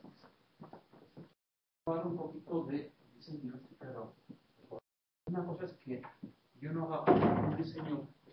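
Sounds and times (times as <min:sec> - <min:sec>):
speech: 0:02.0 - 0:04.4, 0:05.3 - 0:08.2
door shutting with wooden knocks and rattles: 0:07.0 - 0:08.0.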